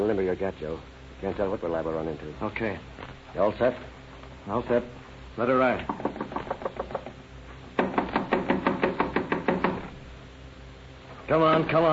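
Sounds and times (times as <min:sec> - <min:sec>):
speech: 0:00.1 - 0:06.2, 0:11.3 - 0:11.9
rapid insistent knocking on a rooming house door: 0:05.8 - 0:07.2, 0:07.8 - 0:10.0.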